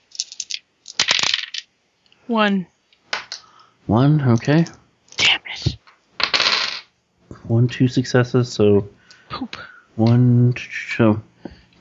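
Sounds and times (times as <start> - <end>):
dice rolling on a hard table: 0.0 - 1.7, 5.8 - 6.9
speech: 2.3 - 2.7, 3.9 - 4.8, 7.5 - 11.3.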